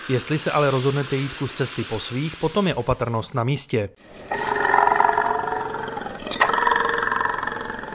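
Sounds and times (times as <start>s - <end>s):
speech: 0.1s - 4.7s
Caucasian bison roaring in deep forest: 4.3s - 7.9s.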